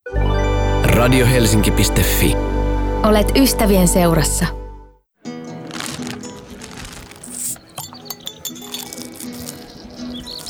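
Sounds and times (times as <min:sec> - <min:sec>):
speech: 0:01.0 - 0:04.6
glasses clinking in a toast: 0:07.2 - 0:09.5.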